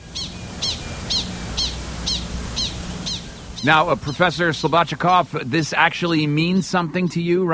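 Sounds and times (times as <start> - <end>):
prairie dog alarm call: 0.0 - 6.3
speech: 3.6 - 7.5.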